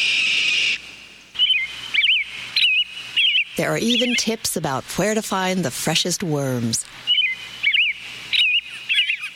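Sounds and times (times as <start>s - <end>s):
bird singing bright warbling phrases: 0.0s - 4.7s, 7.0s - 9.3s
speech: 3.6s - 7.0s.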